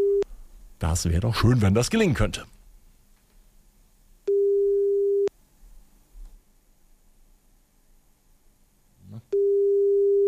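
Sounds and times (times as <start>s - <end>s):
speech: 0.8s - 2.6s
telephone ringback tone: 4.3s - 5.3s, 9.4s - 10.2s.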